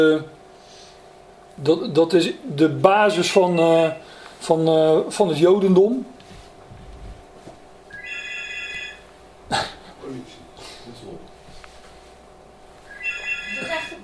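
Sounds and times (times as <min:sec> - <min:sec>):
speech: 0:00.0 - 0:00.4, 0:01.6 - 0:06.2
low hiss: 0:00.0 - 0:14.0
telephone ringing: 0:03.3 - 0:04.1, 0:07.9 - 0:09.0, 0:12.9 - 0:14.0.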